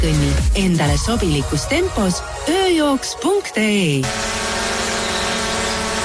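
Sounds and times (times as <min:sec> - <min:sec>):
speech: 0:00.0 - 0:04.6
hovering drone propellers buzzing high-pitched: 0:04.0 - 0:06.0.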